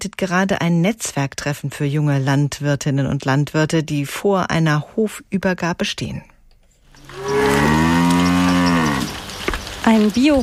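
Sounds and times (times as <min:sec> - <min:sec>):
speech: 0:00.0 - 0:06.3, 0:09.8 - 0:10.4
cow mooing while driven to pasture: 0:07.1 - 0:09.2.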